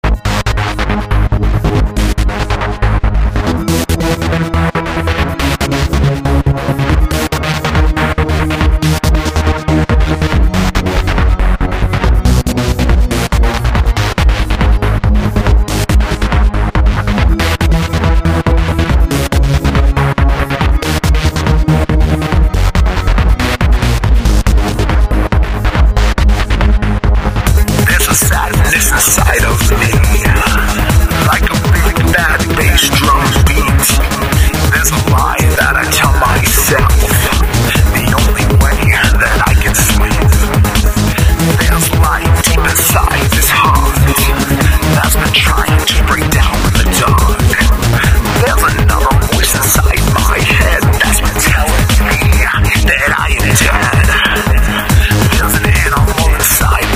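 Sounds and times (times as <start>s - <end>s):
big bass drum beat: 0.0s - 56.9s.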